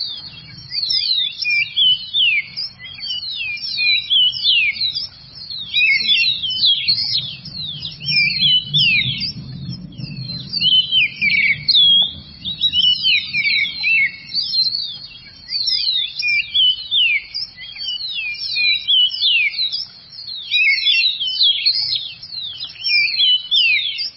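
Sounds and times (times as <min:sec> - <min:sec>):
Andean highland bird singing its dawn song: 0:00.0 - 0:24.1
faint low rumble: 0:02.1 - 0:15.8.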